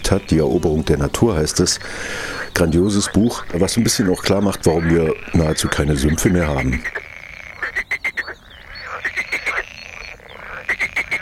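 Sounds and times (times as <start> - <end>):
speech: 0.1 - 7.1
great snipe giving sharp clicks and high twittering whistled notes: 2.3 - 11.2.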